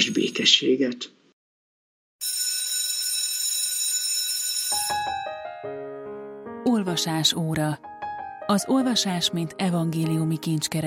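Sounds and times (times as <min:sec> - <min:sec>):
speech: 0:00.0 - 0:01.2, 0:06.7 - 0:07.9, 0:08.5 - 0:10.8
bell ringing with a bright metallic shimmer: 0:02.2 - 0:05.7.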